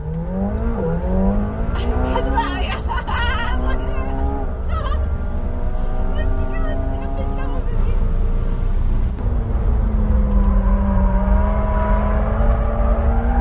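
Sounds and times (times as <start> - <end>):
race car engine revving through gear changes on a racetrack: 0.0 - 13.3
laughter: 1.8 - 4.1, 4.7 - 5.0.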